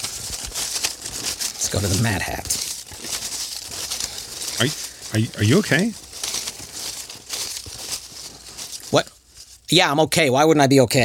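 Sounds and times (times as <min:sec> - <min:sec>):
sheet of paper being unfolded, crinkling and rustling: 0:00.0 - 0:09.7
speech: 0:01.7 - 0:02.7, 0:04.6 - 0:06.0, 0:08.9 - 0:09.1, 0:09.7 - 0:11.0.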